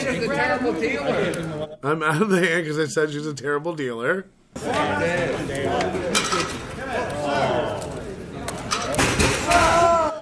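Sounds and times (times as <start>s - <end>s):
speech: 0.3s - 7.6s
wooden chair toppling over backwards: 9.0s - 9.9s.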